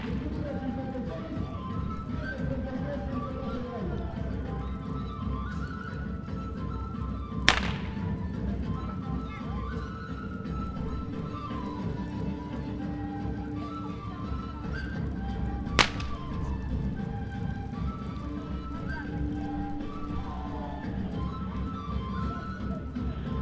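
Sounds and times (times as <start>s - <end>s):
sharp cracks: 0.0s - 0.8s, 7.5s - 8.5s, 15.8s - 16.8s
steady murmur of voices in a town plaza: 0.0s - 23.4s.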